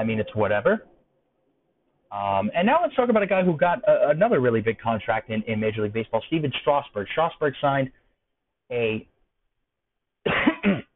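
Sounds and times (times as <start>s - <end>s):
speech: 0.0s - 1.0s, 2.1s - 8.0s, 8.7s - 9.1s
person coughing with a lingering cough: 10.2s - 10.9s.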